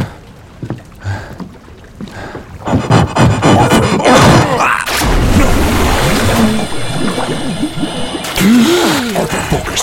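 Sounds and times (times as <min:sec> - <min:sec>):
person splashing and struggling in water: 0:02.7 - 0:09.8.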